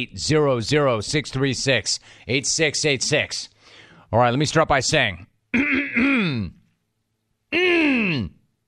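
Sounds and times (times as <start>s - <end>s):
speech: 0.0s - 3.5s, 4.1s - 6.6s, 7.5s - 8.4s
person clearing throat: 5.5s - 6.6s, 7.5s - 8.4s.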